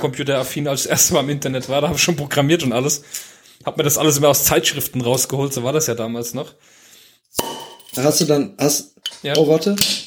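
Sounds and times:
speech: 0:00.0 - 0:07.4, 0:08.0 - 0:10.0
glasses clinking together in a toast: 0:07.4 - 0:08.4, 0:09.0 - 0:09.7.

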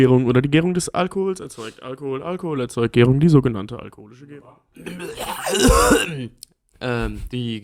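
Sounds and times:
speech: 0:00.0 - 0:07.6
brief voiced coughing grunts: 0:04.8 - 0:06.4
loud phlegmy throat clearing: 0:04.8 - 0:06.4.

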